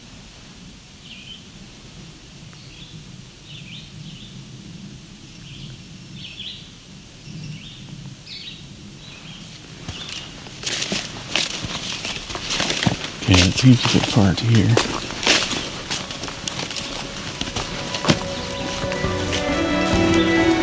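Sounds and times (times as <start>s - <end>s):
crackling noise: 9.8s - 20.6s
speech: 13.6s - 15.0s
red-eyed vireo singing: 15.2s - 20.6s.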